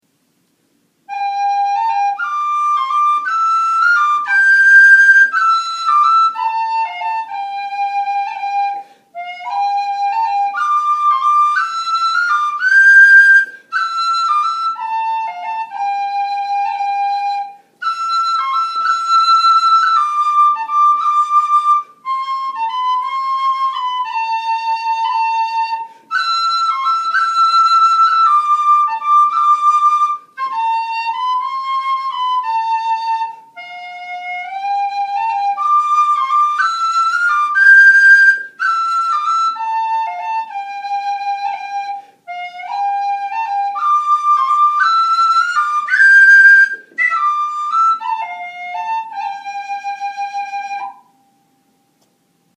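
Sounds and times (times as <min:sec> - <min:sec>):
whistle: 0:01.1 - 0:51.7.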